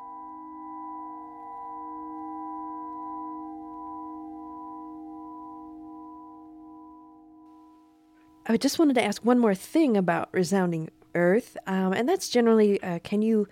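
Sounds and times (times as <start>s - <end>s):
singing bowl rubbed around its rim with a mallet, humming tone: 0.0s - 9.1s
speech: 8.5s - 13.5s.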